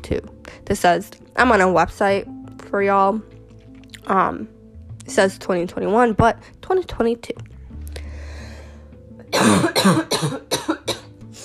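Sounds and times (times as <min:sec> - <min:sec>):
speech: 0:00.0 - 0:03.3, 0:04.1 - 0:07.5, 0:09.3 - 0:10.5
person sick with COVID coughing: 0:09.3 - 0:11.1.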